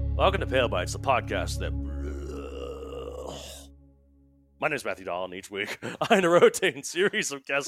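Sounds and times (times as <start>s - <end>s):
speech: 0.2s - 1.8s, 4.6s - 7.6s
human voice imitating a throaty crocodile growl: 1.9s - 3.7s.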